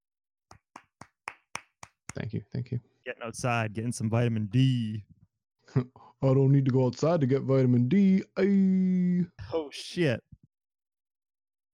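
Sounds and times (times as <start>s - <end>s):
hand claps: 0.5s - 2.2s
speech: 2.2s - 10.3s.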